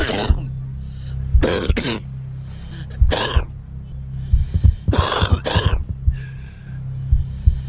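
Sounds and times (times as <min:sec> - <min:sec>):
smoker's harsh raspy cough: 0:00.0 - 0:00.5, 0:01.4 - 0:02.1, 0:03.0 - 0:03.5, 0:04.9 - 0:05.9
low steady hum: 0:00.0 - 0:07.6.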